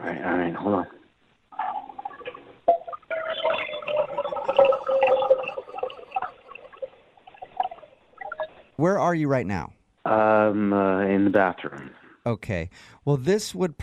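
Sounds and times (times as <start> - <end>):
speech: 0.1 - 1.0, 8.8 - 13.8
water filling a neti pot: 1.5 - 8.6.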